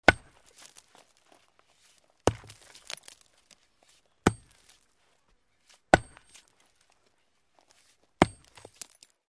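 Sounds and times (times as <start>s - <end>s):
sledgehammer hitting rock: 0.0s - 0.8s, 2.2s - 3.2s, 4.2s - 4.8s, 5.9s - 6.5s, 8.2s - 9.0s.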